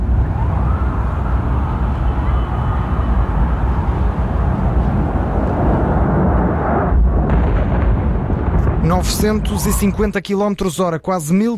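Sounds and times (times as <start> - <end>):
sirens wailing: 0.0 - 6.9
airliner crashing into tower and exploding: 4.1 - 10.2
speech: 9.1 - 11.5.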